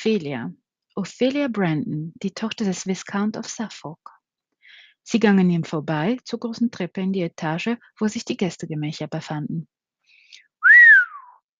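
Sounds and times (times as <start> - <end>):
speech: 0.0 - 4.1, 5.0 - 9.8
man whistling a quick upward swoop: 10.6 - 11.5.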